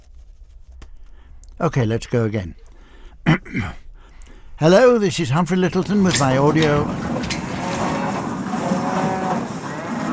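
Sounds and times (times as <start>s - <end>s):
speech: 1.6s - 3.8s, 4.6s - 7.1s
cows mooing: 6.5s - 10.1s.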